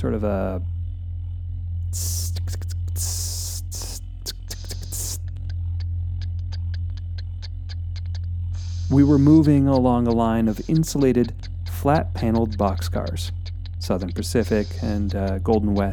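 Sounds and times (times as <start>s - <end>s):
speech: 0.0s - 0.7s, 1.9s - 2.2s, 8.9s - 15.9s
low constant hum: 0.0s - 15.9s
voice imitating hissing of a pressurized brake line: 2.0s - 5.2s.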